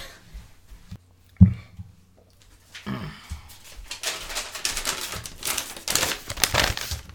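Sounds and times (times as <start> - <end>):
paper notes rustling and crinkling: 3.5 - 7.1.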